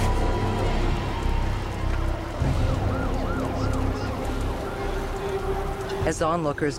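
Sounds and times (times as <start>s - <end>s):
heavy steady rumble: 0.0s - 6.7s
hook and ladder fire truck siren wailing at a burning building: 0.0s - 6.7s
speech: 6.1s - 6.7s.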